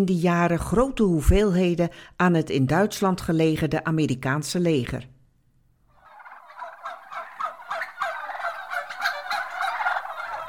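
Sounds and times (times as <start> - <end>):
speech: 0.0 - 5.1
crowd of chickens clucking and squawking at a poultry market: 5.9 - 10.4.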